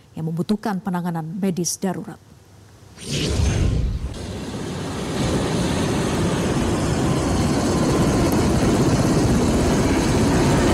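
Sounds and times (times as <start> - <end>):
speech: 0.2 - 2.3, 3.0 - 3.6
helicopter engine and rotor roar: 4.1 - 10.7.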